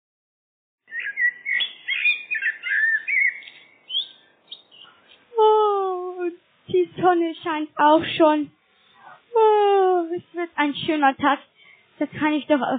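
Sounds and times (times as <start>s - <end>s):
blackbird singing fluty warbling phrases: 0.8s - 5.4s
speech: 6.7s - 8.6s, 9.3s - 12.7s.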